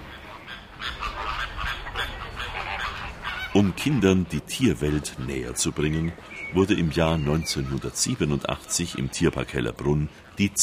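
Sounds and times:
flock of flamingos calling with goose-like honks: 0:00.0 - 0:09.7
speech: 0:03.6 - 0:10.6.

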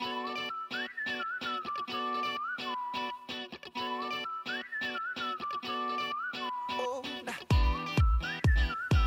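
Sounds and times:
backing track: 0:00.0 - 0:09.0
whistled catchy pop melody: 0:00.0 - 0:09.0
punchy beats: 0:07.4 - 0:09.0.

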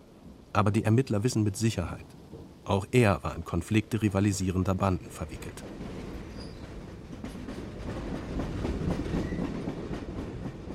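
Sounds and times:
continuous low rumble of train on rails: 0:00.0 - 0:10.7
speech: 0:00.6 - 0:05.9
train wheels clickety-clack over track joints: 0:05.4 - 0:10.7.

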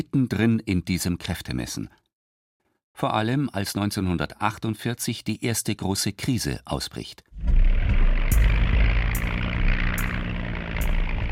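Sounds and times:
speech: 0:00.0 - 0:02.0, 0:03.0 - 0:07.7
C-54 Skymaster propeller aircraft landing at Tempelhof airfield: 0:07.4 - 0:11.3.

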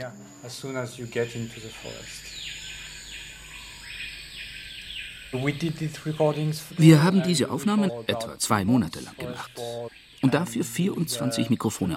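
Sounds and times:
speech: 0:00.0 - 0:02.5, 0:05.3 - 0:11.9
dense buzzing rainforest ambience in French Guiana: 0:00.0 - 0:11.9
male screaming pihas giving whistled calls in tropical rainforest in French Guiana: 0:01.5 - 0:07.0.

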